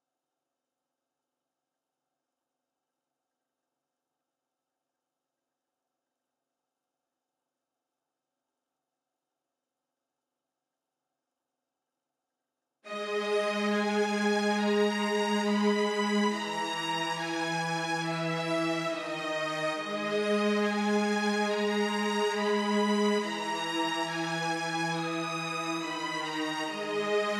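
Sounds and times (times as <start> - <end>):
high violin melody loop in G sharp minor: 12.9 - 27.3.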